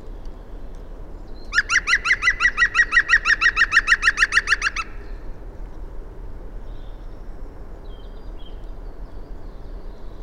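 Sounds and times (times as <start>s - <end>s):
faint background noise: 0.0s - 10.2s
grongoling calling harsh clipped notes: 1.5s - 5.1s.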